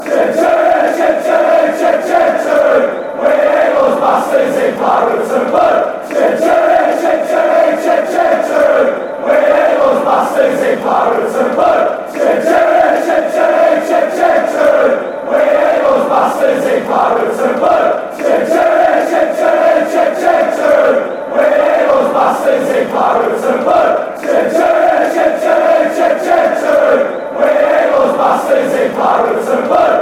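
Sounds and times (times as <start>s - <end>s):
fans chanting: 0.0s - 30.0s.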